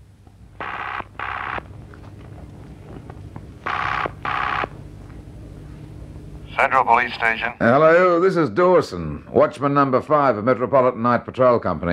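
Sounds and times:
low steady hum: 0.0 - 11.9
public phone box telephone ringing in double bursts: 0.6 - 1.7, 3.6 - 4.7
speech: 6.6 - 11.9.

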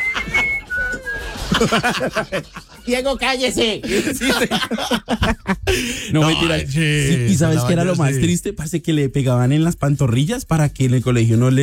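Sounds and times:
person whistling high notes: 0.0 - 1.8
laughter: 0.0 - 2.9, 3.8 - 8.3
speech: 1.6 - 11.6.

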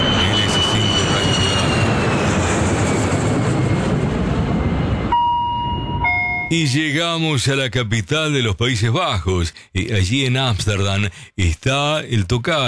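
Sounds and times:
Boeing airliner taking off with loud steady broadband engine roar: 0.0 - 6.5
faint thin tone: 5.2 - 6.6
speech: 6.5 - 12.6.

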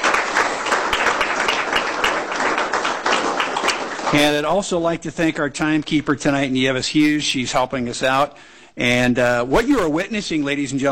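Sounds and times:
audience applauding at an evening presentation: 0.0 - 4.6
speech: 4.1 - 10.9.

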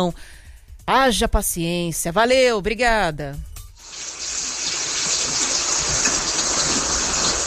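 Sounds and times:
speech: 0.0 - 3.5
steady rain pouring down: 3.8 - 7.4.

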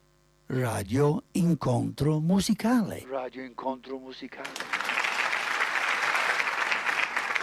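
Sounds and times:
speech: 0.5 - 4.7
audience applause: 4.4 - 7.4.

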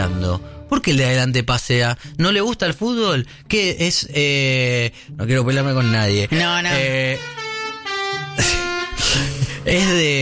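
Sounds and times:
speech: 0.2 - 7.4, 8.4 - 10.1
vehicle horn blaring with a rich brassy tone: 5.8 - 9.4.

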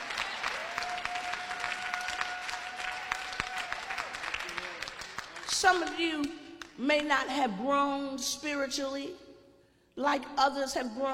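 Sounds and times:
audience clapping hands at a sermon: 0.0 - 5.7
speech: 5.6 - 9.2, 10.0 - 11.1.

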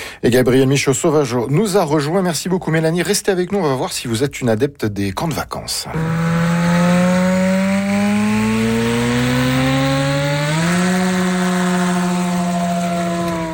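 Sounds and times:
speech: 0.2 - 6.5
small propeller airplane engine droning and revving: 5.9 - 13.5.

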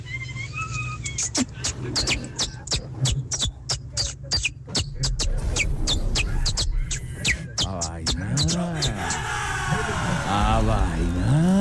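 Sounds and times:
person whistling in imitation of a canary's song: 0.0 - 9.2
speech: 1.2 - 2.4
laughter: 7.2 - 11.5.

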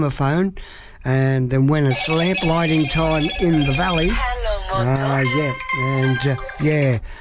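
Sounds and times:
speech: 0.0 - 7.1
telephone ringing: 1.9 - 7.0.

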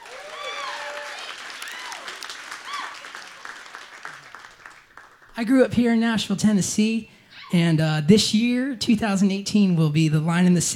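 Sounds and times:
whoops and cheers: 0.0 - 3.4
audience applause: 0.0 - 5.4
speech: 5.4 - 10.7.

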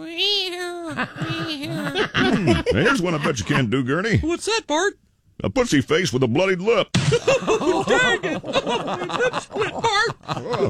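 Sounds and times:
person making a mouth sound imitating a scary black cat's meow: 0.0 - 1.6
laughter: 0.9 - 3.8, 7.0 - 10.6
speech: 0.9 - 10.6.

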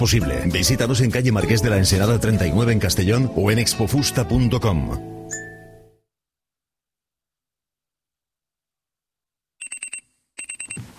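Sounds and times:
speech: 0.0 - 5.2
alarm clock electronic beeping: 9.6 - 10.8.

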